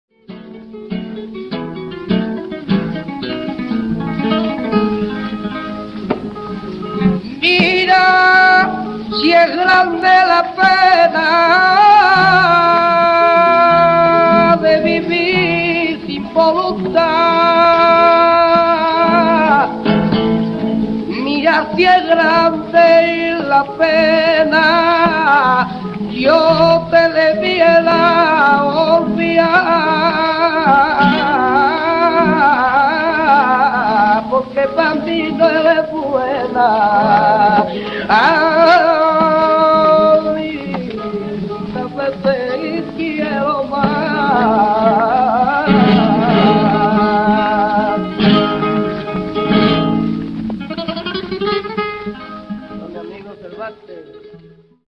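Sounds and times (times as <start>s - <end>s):
fandango guitar playing: 0.1s - 54.8s
person singing fandango: 6.6s - 50.3s.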